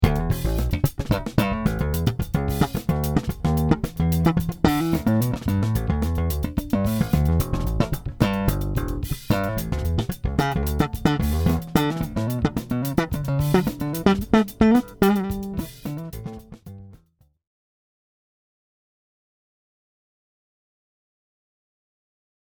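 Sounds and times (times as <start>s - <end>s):
slap bass sample: 0.0s - 17.0s.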